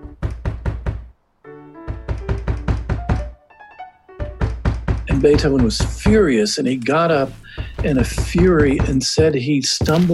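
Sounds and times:
heavy rapid pounding on a door: 0.1s - 1.1s, 1.9s - 3.4s, 4.2s - 6.3s, 7.5s - 9.3s
speech: 5.2s - 10.1s.

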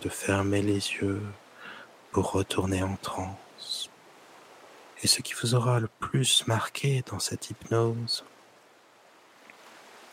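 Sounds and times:
speech: 0.0s - 1.4s, 2.1s - 3.9s, 5.0s - 8.3s
soft continuous wash of ocean surf: 0.0s - 10.1s.

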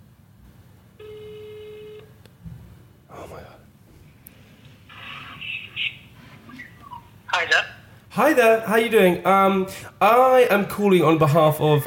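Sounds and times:
buzzy ringback tone on an outgoing phone call: 1.0s - 2.1s
speech: 7.4s - 11.8s.

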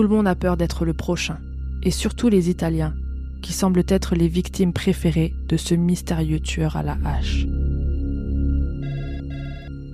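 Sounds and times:
speech: 0.0s - 7.7s
old-style telephone ringing: 8.8s - 9.9s.

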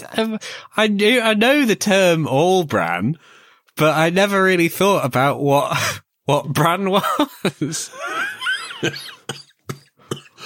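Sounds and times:
speech: 0.2s - 9.4s
harsh coughing fit brought on by laughing: 8.7s - 10.4s.

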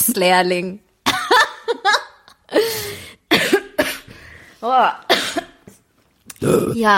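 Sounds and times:
speech: 0.1s - 0.9s, 2.5s - 2.9s, 4.6s - 5.1s, 6.4s - 6.9s
people coughing: 3.3s - 4.1s, 5.1s - 5.6s.

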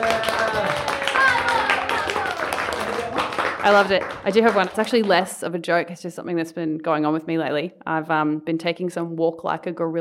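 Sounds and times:
small group applauding themselves: 0.0s - 5.3s
speech: 3.6s - 10.0s.

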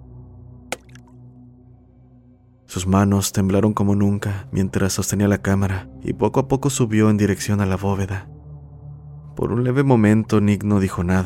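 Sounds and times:
drop of liquid splattering onto a man's shoulder: 0.7s - 1.1s
speech: 2.7s - 8.4s, 9.4s - 11.2s.

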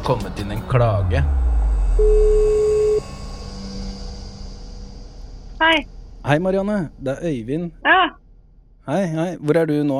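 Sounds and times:
speech: 0.1s - 1.4s, 2.0s - 2.3s, 5.6s - 8.2s, 8.8s - 9.9s
telephone call tone: 2.0s - 3.1s.

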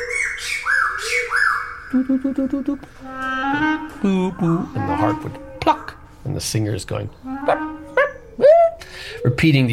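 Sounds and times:
birds calling with whistled notes and squawky chirps: 0.0s - 6.2s, 6.9s - 9.7s
steady tone: 1.9s - 6.2s
speech: 1.9s - 7.6s, 9.2s - 9.7s.

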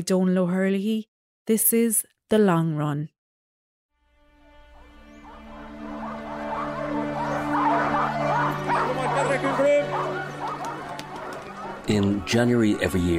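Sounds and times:
speech: 0.0s - 3.2s, 11.9s - 13.1s
pack of sled dogs barking and yipping at a dog sled race: 4.8s - 13.1s.

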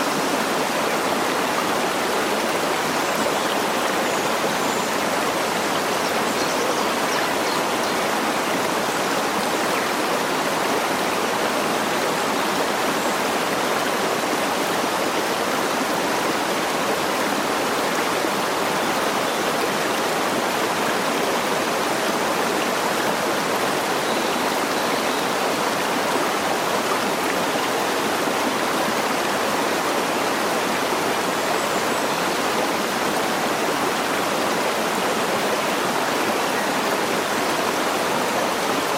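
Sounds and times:
water rushing like a stream or small waterfall: 0.0s - 38.9s.

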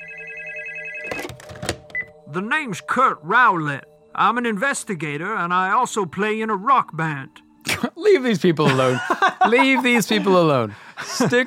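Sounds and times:
telephone ringing: 0.0s - 3.0s
speech: 2.3s - 11.4s
laughter: 8.6s - 11.4s.

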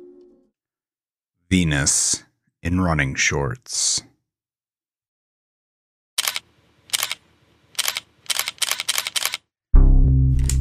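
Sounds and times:
speech: 1.5s - 4.1s
camera shutter snapping in a sunny mall parking lot: 6.2s - 7.2s, 7.8s - 9.4s.

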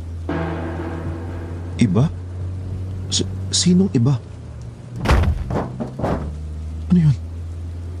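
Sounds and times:
steady low engine-like hum: 0.0s - 7.9s
speech: 1.8s - 2.2s, 3.1s - 4.3s, 7.0s - 7.2s
heavy thuds of something landing on a roof: 5.0s - 6.4s.

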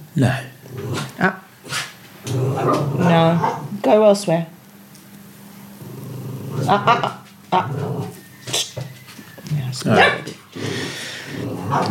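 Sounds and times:
speech: 0.2s - 4.5s, 6.7s - 8.0s, 9.8s - 10.2s
dog barking and yipping: 2.6s - 3.7s, 9.9s - 10.4s.

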